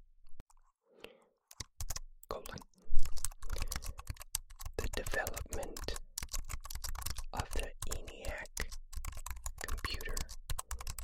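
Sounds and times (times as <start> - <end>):
typing on an electric typewriter keyboard: 3.2 - 11.0.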